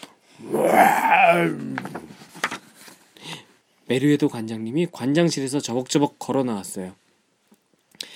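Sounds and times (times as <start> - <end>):
speech: 0.4 - 2.0, 3.9 - 7.0
person loudly imitating a lion roaring in a library: 0.4 - 2.1
soft breathy and clicking mouth sounds: 7.5 - 8.1.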